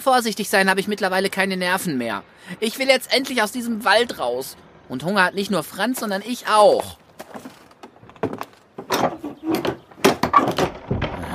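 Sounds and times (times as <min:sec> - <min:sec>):
speech: 0:00.0 - 0:07.4
locked wooden cabin door rattling: 0:07.2 - 0:11.3.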